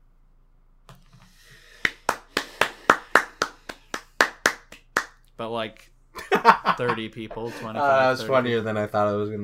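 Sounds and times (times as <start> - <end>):
one person clapping rapidly to mimic crowd applause: 1.8 - 5.3
speech: 5.4 - 9.4
laughter: 6.2 - 8.5.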